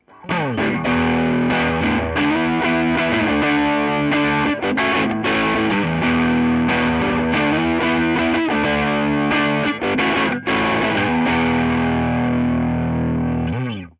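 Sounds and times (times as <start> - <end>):
medium saturated Telecaster electric guitar: 0.0 - 13.9.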